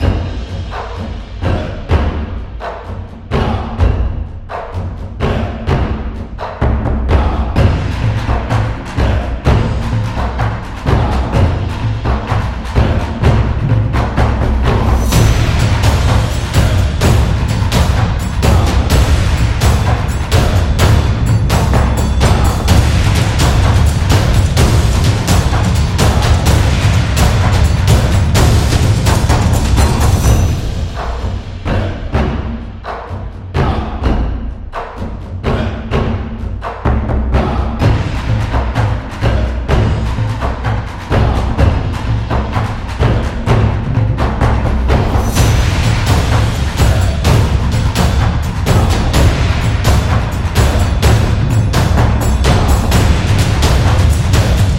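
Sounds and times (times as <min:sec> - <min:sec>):
Taiko drums from Japan: 0:00.0 - 0:54.7.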